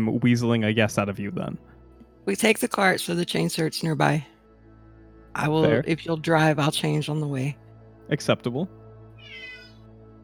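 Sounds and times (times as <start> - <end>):
speech: 0.0 - 4.3, 5.4 - 8.8
cat meowing: 9.2 - 9.8.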